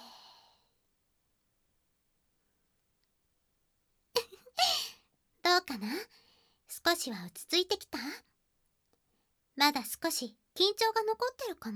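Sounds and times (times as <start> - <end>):
slow soft breathing in and out: 0.0 - 0.8
speech: 5.6 - 8.3, 9.6 - 11.7.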